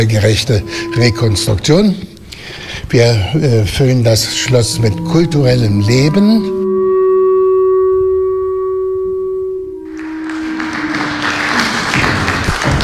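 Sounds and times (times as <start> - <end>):
speech: 0.0 - 2.1, 2.8 - 6.6
sustained musical note: 0.0 - 12.6
festival audience applause at Schloss Stolpe on Usedom in Germany: 9.9 - 12.8.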